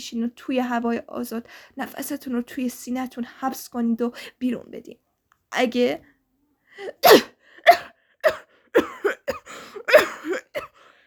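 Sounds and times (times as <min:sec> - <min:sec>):
speech: 0:00.0 - 0:06.1, 0:06.8 - 0:08.9
two people coughing: 0:07.0 - 0:10.8.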